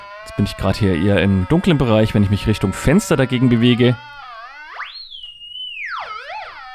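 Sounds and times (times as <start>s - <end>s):
speech: 0.2s - 4.1s
electronic whistle tone from a color sensor detecting light: 4.0s - 6.7s.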